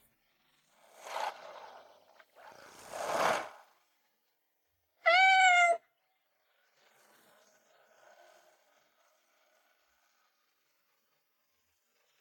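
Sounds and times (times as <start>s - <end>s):
kitten meowing: 5.1s - 5.8s.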